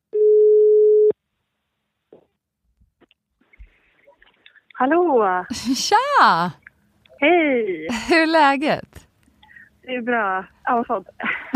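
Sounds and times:
outgoing telephone call ringing tone: 0.2 - 1.1
speech: 4.8 - 6.6, 7.2 - 9.0, 9.9 - 11.3.

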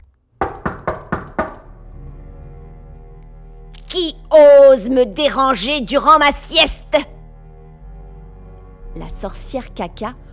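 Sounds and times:
firm knocks on a wooden house door: 0.4 - 1.7
speech: 4.0 - 7.1, 9.0 - 10.2.

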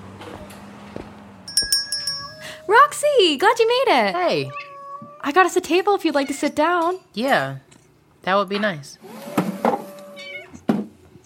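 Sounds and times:
speech: 2.7 - 4.6, 5.2 - 7.6, 8.2 - 9.2
cat meowing in a cat cafe: 4.4 - 5.3, 9.9 - 10.6.

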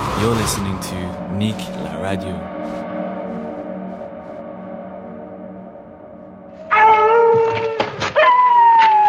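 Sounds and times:
speech: 0.2 - 2.5
wolves howling: 6.5 - 9.0.

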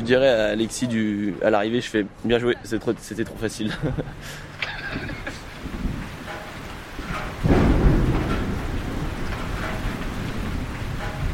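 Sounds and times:
steady rain pouring: 0.0 - 11.3
speech: 0.1 - 5.4
laughter: 3.6 - 5.6
deep rumbling roll of thunder: 4.9 - 11.3.

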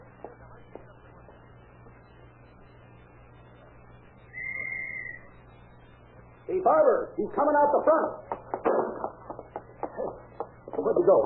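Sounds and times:
faint noise: 0.0 - 11.2
steady low hum: 0.0 - 11.2
sharp whistle blast blown as a signal: 4.3 - 5.3
speech: 6.6 - 8.3, 10.8 - 11.2.

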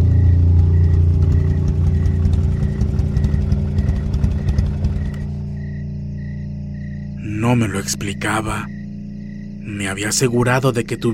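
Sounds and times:
motorcycle engine idling: 0.0 - 7.2
faint repeating chirp: 0.0 - 11.1
speech: 7.5 - 8.8, 9.7 - 11.1.

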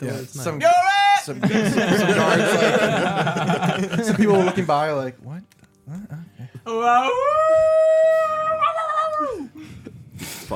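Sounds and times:
speech: 0.0 - 8.6, 9.2 - 10.5
laughter: 1.4 - 4.8
dog howling: 7.0 - 9.4.

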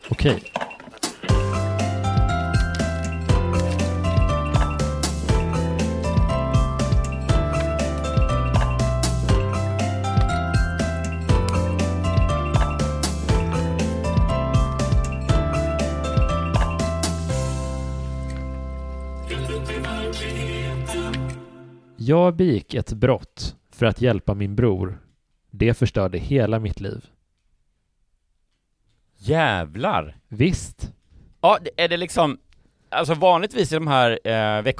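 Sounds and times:
speech: 0.2 - 0.5, 22.1 - 27.2, 29.2 - 34.7
short upbeat podcast jingle with bright layered instruments: 1.3 - 22.0.

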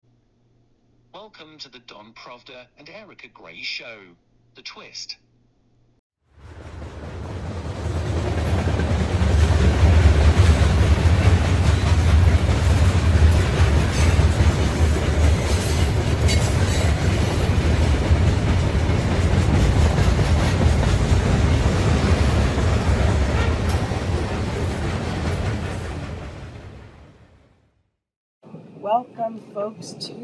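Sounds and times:
speech: 1.2 - 5.2, 29.0 - 30.2
MTA train rattling along the tracks from Connecticut to New York City: 6.4 - 27.2.

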